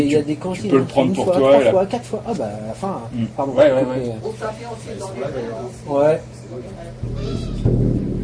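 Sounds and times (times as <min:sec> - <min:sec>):
speech: 0:00.0 - 0:08.0
pigeon cooing: 0:07.1 - 0:07.7.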